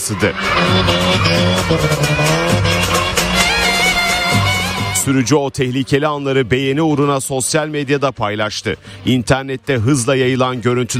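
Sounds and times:
tires squealing as a car drifts: 0:00.0 - 0:05.3
car engine roaring: 0:00.0 - 0:08.0
speech: 0:00.1 - 0:03.0, 0:05.0 - 0:10.9.

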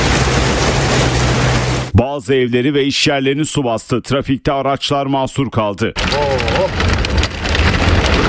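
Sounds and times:
heavy rain downpour over Ankara: 0:00.0 - 0:02.0, 0:06.0 - 0:08.2
speech: 0:02.0 - 0:06.9.

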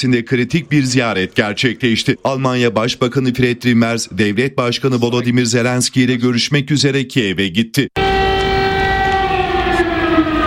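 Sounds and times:
speech: 0:00.0 - 0:08.1
air raid sirens wailing in Kyiv: 0:08.0 - 0:10.4.

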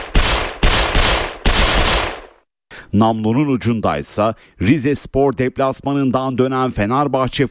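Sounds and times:
loud shotgun gunfire: 0:00.0 - 0:02.4
speech: 0:02.9 - 0:07.4.

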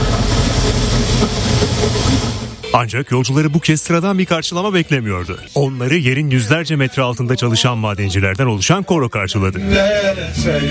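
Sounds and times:
tourist express train arriving at a city station on rails: 0:00.0 - 0:03.4
speech: 0:02.8 - 0:10.7.

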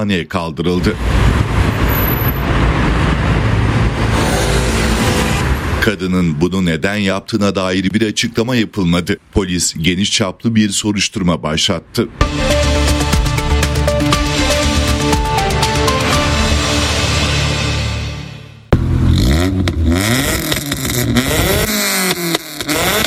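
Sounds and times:
speech: 0:00.0 - 0:01.8, 0:05.8 - 0:12.6
car engine revving through loud screaming exhaust: 0:00.8 - 0:06.0, 0:12.2 - 0:23.0.

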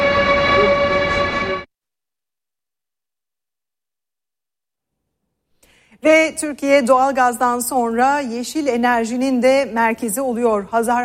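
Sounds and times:
domestic high-speed electric train running: 0:00.0 - 0:01.7
speech: 0:06.0 - 0:11.0.

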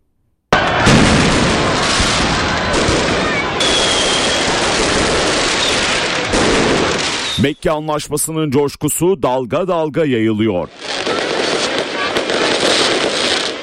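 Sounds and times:
fireworks exploding at the finale of celebrations in Islamabad Pakistan: 0:00.5 - 0:07.6, 0:10.7 - 0:13.6
speech: 0:07.4 - 0:10.8.

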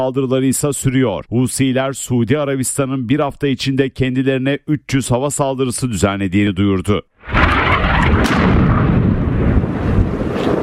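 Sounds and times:
speech: 0:00.0 - 0:07.8
artillery fire destroying military vehicles on the battlefront: 0:07.2 - 0:10.6.

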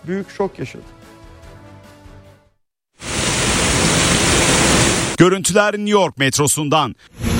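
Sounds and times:
speech: 0:00.0 - 0:01.0, 0:05.2 - 0:07.2
water pouring heavily from the ceiling into a flooded subway station: 0:03.0 - 0:05.2.

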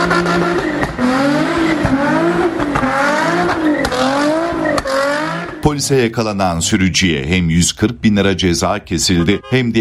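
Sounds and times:
speech: 0:00.0 - 0:01.7, 0:05.8 - 0:09.8
sports car tires squealing through sliding turns: 0:00.0 - 0:05.7
sports car engine revving while drifting: 0:00.0 - 0:05.8.

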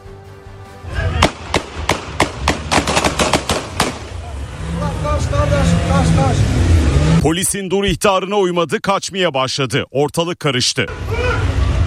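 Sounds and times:
police pistol gunshots during a street chase: 0:01.2 - 0:04.2
car engine: 0:01.3 - 0:07.5, 0:10.9 - 0:11.8
speech: 0:07.2 - 0:11.2.

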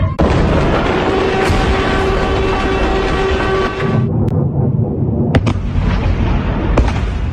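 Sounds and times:
violent explosions from missile strikes: 0:00.1 - 0:07.2.

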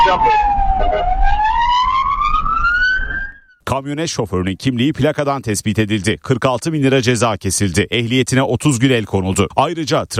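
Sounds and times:
ambulance siren wailing behind a pickup truck: 0:00.0 - 0:03.6
speech: 0:00.1 - 0:01.5, 0:03.7 - 0:10.1.

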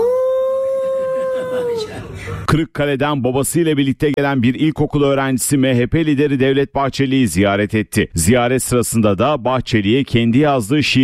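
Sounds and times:
primary-school child imitating a wolf howl: 0:00.0 - 0:01.8
speech: 0:01.8 - 0:11.0.

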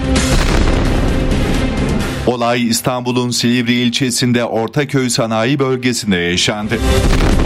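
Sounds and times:
explosive device detonating in a motorcycle suspect's hand beside a recycling factory: 0:00.2 - 0:02.4, 0:07.0 - 0:07.4
speech: 0:02.3 - 0:07.4.

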